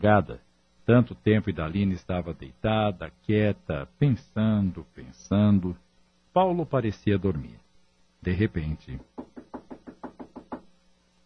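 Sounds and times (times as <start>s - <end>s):
speech: 0.0s - 5.8s, 6.4s - 7.6s, 8.2s - 9.5s
light quick knocking on a bedroom door: 9.0s - 10.7s.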